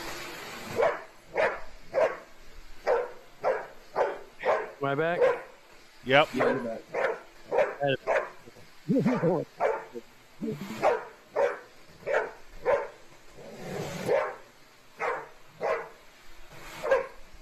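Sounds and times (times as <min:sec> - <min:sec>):
dog barking at a vacuum cleaner: 0:00.7 - 0:05.6, 0:06.3 - 0:10.0, 0:10.6 - 0:13.0, 0:13.9 - 0:16.0, 0:16.8 - 0:17.2
speech: 0:04.9 - 0:05.4, 0:06.0 - 0:07.0, 0:07.8 - 0:08.1, 0:08.9 - 0:11.0.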